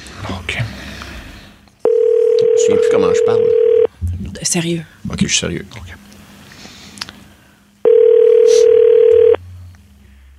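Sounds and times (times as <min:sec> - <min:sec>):
telephone dial tone: 0:01.8 - 0:03.9, 0:07.9 - 0:09.4
speech: 0:02.7 - 0:03.6, 0:04.4 - 0:06.1.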